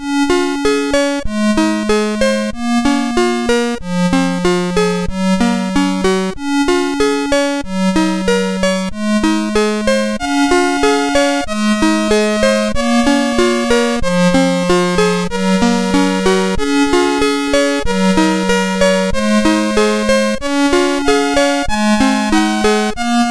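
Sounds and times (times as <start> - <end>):
classical piece on MOS6581R4 chip: 0.0 - 23.3.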